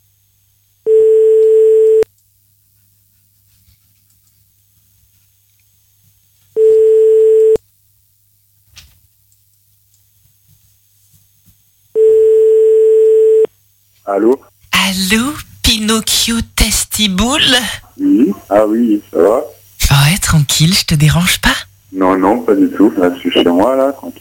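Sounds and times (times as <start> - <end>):
telephone ringback tone on a call being placed: 0.9 - 2.0, 6.6 - 7.6, 12.0 - 13.5
speech: 14.1 - 24.1.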